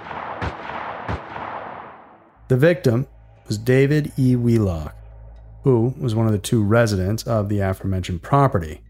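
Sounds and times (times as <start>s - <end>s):
gunshots fired at night from a house in Keene, New Hampshire: 0.0s - 2.4s
speech: 2.5s - 5.0s, 5.6s - 8.8s.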